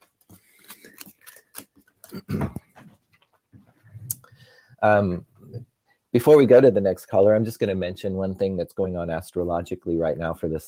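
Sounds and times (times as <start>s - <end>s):
dropped playing cards being gathered up: 0.0s - 3.5s
speech: 4.8s - 10.6s.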